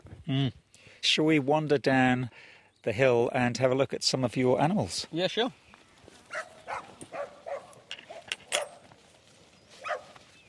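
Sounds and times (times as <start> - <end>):
speech: 0.3 - 5.6
border collie cross heading dog puppy yipping and barking: 6.3 - 8.8, 9.8 - 10.2.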